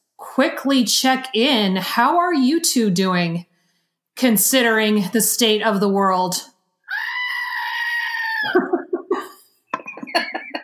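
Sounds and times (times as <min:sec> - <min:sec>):
speech: 0:00.4 - 0:03.5, 0:04.2 - 0:06.5
goat letting out a long human-like scream: 0:06.9 - 0:08.6
laughter: 0:08.4 - 0:10.6.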